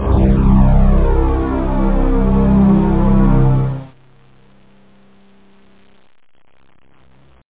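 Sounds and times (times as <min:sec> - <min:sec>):
suspenseful synth strings: 0:00.0 - 0:03.9.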